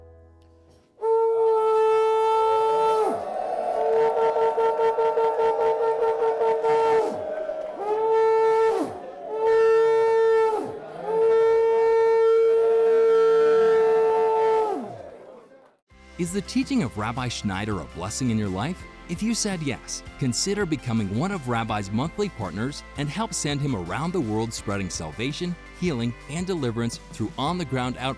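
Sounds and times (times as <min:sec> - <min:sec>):
shofar ram's horn blasts: 0:01.0 - 0:15.0
speech: 0:16.3 - 0:28.1.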